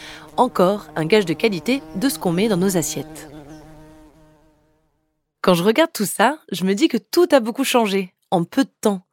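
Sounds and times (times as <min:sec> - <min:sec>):
single bee buzzing: 0:00.0 - 0:05.3
speech: 0:00.4 - 0:03.3, 0:05.5 - 0:09.1.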